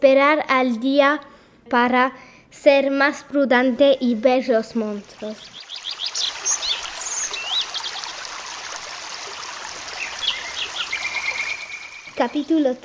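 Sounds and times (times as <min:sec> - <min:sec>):
speech: 0:00.0 - 0:06.3, 0:12.2 - 0:12.8
steady stream of flowing water: 0:04.0 - 0:12.8
several birds singing and chirping: 0:05.3 - 0:08.2, 0:09.9 - 0:12.5.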